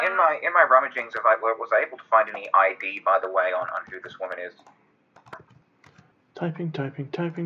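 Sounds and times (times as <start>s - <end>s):
speech: 0.2s - 5.5s, 6.4s - 7.4s
soft quick keyboard clicks: 2.2s - 6.1s.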